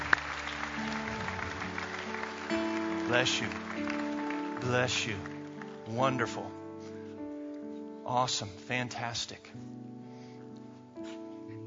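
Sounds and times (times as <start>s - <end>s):
audience applause at a church service: 0.0s - 6.3s
speech: 2.5s - 3.6s, 4.6s - 5.3s, 5.9s - 6.6s, 8.1s - 9.8s.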